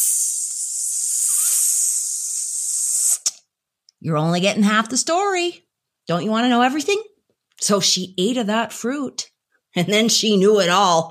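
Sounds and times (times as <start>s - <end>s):
voice hissing a snake-like psst: 0.0s - 3.4s
speech: 4.0s - 11.0s.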